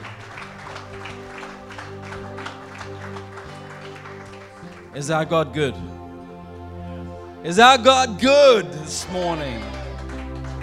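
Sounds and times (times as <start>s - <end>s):
crowd clapping: 0.0s - 5.3s, 8.6s - 10.6s
sustained keyboard or organ chords: 0.0s - 10.6s
speech: 5.0s - 6.0s, 7.4s - 9.7s.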